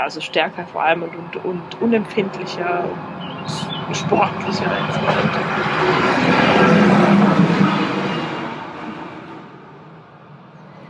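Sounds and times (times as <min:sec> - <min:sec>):
speech: 0:00.0 - 0:07.4
train rumbling past: 0:00.0 - 0:10.8.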